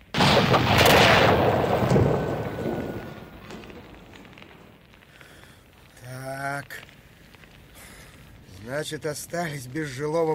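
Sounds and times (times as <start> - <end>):
crackling rumbling blasts of rockets and gas: 0.0 - 10.3
signal rockets and gas cylinders exploding on a truck bed: 0.1 - 4.8
speech: 8.8 - 10.3.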